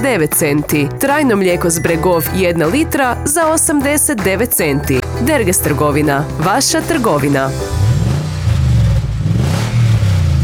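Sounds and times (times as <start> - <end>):
speech: 0.0 - 7.8
car engine revving: 7.5 - 10.4.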